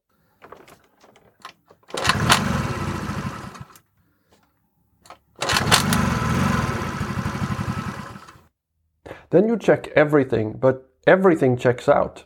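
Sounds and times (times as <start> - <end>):
cold carbureted motorcycle engine cranking and failing to start: 0.5 - 3.8, 5.4 - 8.4
speech: 9.3 - 12.2.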